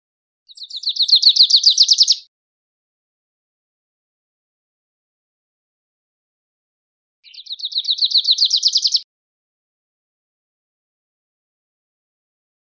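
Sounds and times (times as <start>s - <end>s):
Grace's warbler song buzzy trills: 0.5s - 2.2s, 7.2s - 9.0s.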